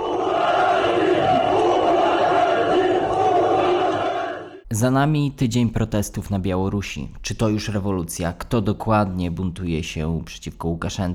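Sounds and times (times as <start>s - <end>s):
striking factory workers chanting: 0.0s - 4.6s
speech: 4.7s - 11.1s.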